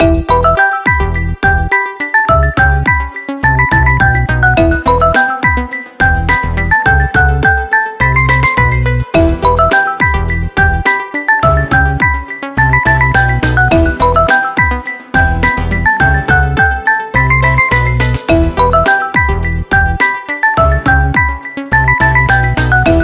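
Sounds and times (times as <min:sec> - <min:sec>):
wooden percussion ringtone: 0:00.0 - 0:23.0.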